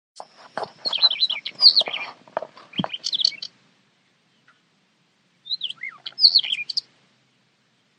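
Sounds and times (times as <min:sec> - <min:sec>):
bird calls of clicky scratchy chatter and high whistled notes: 0:00.2 - 0:03.5, 0:05.4 - 0:06.9.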